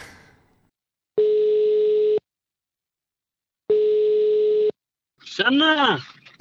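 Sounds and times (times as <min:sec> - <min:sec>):
telephone ringback tone: 0:01.2 - 0:02.2, 0:03.7 - 0:04.7
speech: 0:05.4 - 0:06.2.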